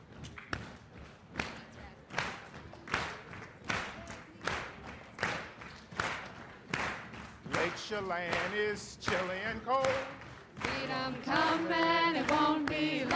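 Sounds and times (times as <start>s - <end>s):
group of people clapping: 0.1s - 13.1s
speech: 7.9s - 10.2s, 10.8s - 13.1s.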